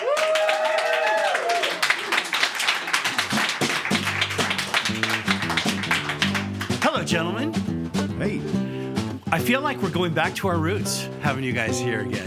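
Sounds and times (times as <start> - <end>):
brief voice or cheer: 0.0 - 1.9
live studio audience applauding: 0.0 - 7.0
speech: 7.1 - 8.6, 9.3 - 12.2.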